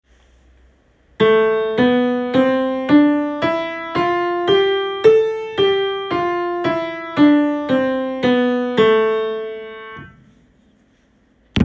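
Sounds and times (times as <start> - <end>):
minor scale starting on A: 1.2 - 10.2.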